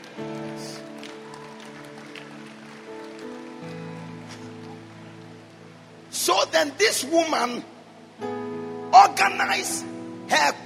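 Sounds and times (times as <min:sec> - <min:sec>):
rain falling on a surface: 0:00.0 - 0:06.3
speech: 0:06.5 - 0:07.7, 0:09.1 - 0:10.6.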